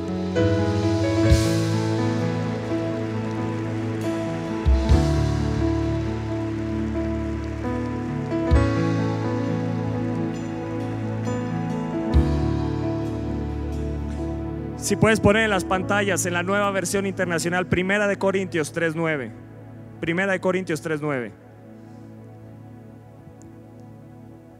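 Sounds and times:
sustained keyboard chords: 0.0 - 24.5
large crowd applauding loudly: 1.3 - 12.2
speech: 14.9 - 21.4.

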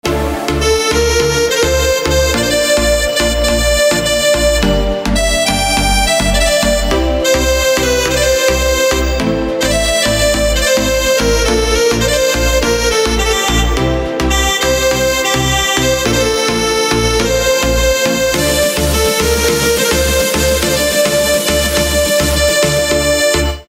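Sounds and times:
harmonica instrumental ringtone: 0.1 - 23.6.

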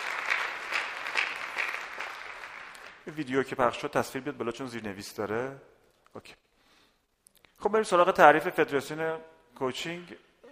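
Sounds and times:
audience applause: 0.0 - 3.0
speech: 3.1 - 6.4, 7.6 - 10.5.

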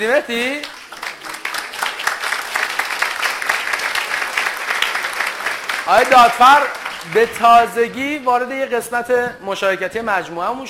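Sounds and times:
speech: 0.0 - 0.8, 5.9 - 10.6
crowd applauding: 0.0 - 8.3.

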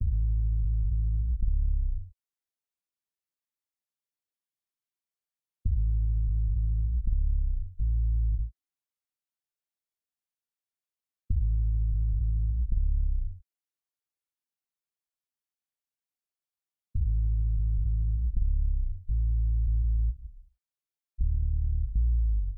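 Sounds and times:
boombox bass in D minor: 0.0 - 2.1, 5.7 - 8.5, 11.3 - 13.4, 17.0 - 20.4, 21.2 - 22.5.

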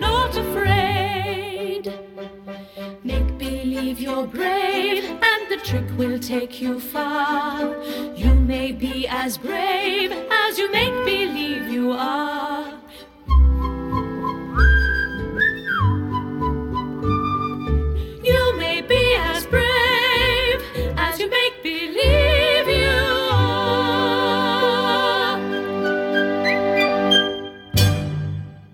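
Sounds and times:
full orchestral accompaniment with bouncy bass: 0.0 - 12.2, 13.3 - 21.3, 22.0 - 28.7
speech: 5.6 - 12.4
whistled melody from a stage musical song: 10.6 - 12.1, 13.2 - 20.5, 25.4 - 28.7.

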